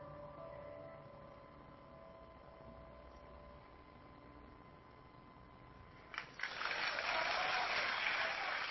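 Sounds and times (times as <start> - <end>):
group clapping together in steady applause: 6.1 - 8.7.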